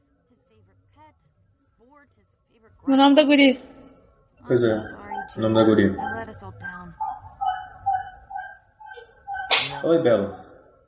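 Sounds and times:
speech: 1.1s - 3.8s, 4.4s - 7.0s, 9.8s - 10.4s
street dog barking: 4.5s - 10.5s.

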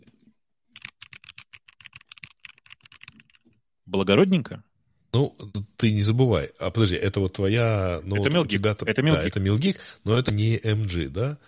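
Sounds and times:
rapid typing on a mechanical keyboard: 0.8s - 3.4s
speech: 3.9s - 11.4s.

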